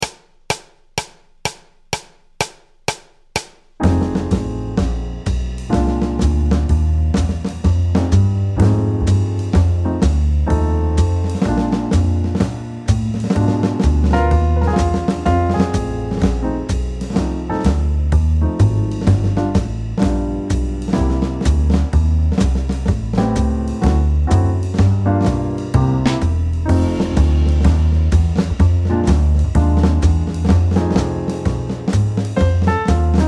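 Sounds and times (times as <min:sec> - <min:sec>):
snare drum: 0:00.0 - 0:33.2
blues music: 0:03.8 - 0:33.2.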